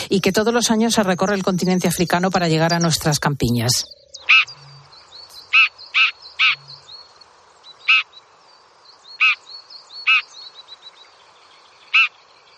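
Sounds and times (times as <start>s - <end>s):
faint birdsong: 0.0s - 12.5s
speech: 0.1s - 4.5s
red-backed shrike giving harsh rasping calls: 4.2s - 6.8s.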